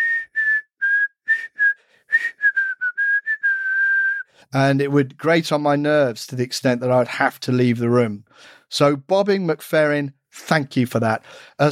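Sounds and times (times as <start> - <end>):
person whistling a pop tune: 0.0 - 4.4
speech: 4.5 - 11.6.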